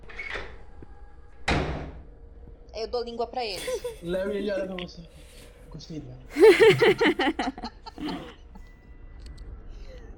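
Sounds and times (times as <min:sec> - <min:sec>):
door swinging shut with solid thud: 0:01.4 - 0:02.0
speech: 0:02.8 - 0:08.4
laughter: 0:03.6 - 0:04.3, 0:06.3 - 0:08.5.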